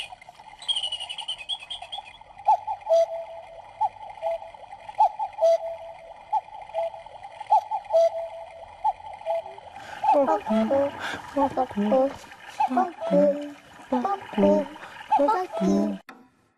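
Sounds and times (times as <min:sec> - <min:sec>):
brief tonal cuckoo clock calls: 0:00.0 - 0:10.8
cuckoo clock ticking in sharp clicks: 0:01.0 - 0:10.4
sustained tones: 0:02.1 - 0:16.0
busy voice-like sounds: 0:09.9 - 0:16.0.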